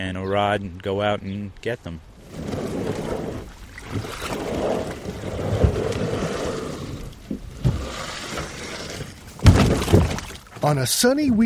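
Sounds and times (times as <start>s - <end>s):
speech: 0.0s - 2.5s, 10.6s - 11.4s
tandem kayak hull scraping and sliding off the shore into Split Rock Reservoir: 2.1s - 10.5s
kayak knocks and water sloshes: 2.1s - 10.7s
water splashing and rumbling on Split Rock Reservoir: 2.1s - 10.9s.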